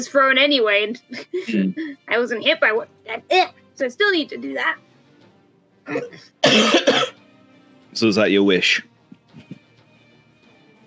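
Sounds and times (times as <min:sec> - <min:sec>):
speech: 0:00.0 - 0:04.9, 0:05.9 - 0:07.2, 0:07.9 - 0:08.9
harsh raspy coughs: 0:05.9 - 0:07.2.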